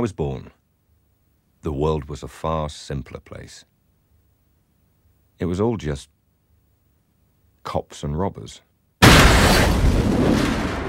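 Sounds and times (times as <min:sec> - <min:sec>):
speech: 0:00.0 - 0:00.6, 0:01.6 - 0:03.7, 0:05.4 - 0:06.1, 0:07.6 - 0:08.7
explosion blowing open van back doors: 0:09.0 - 0:10.8.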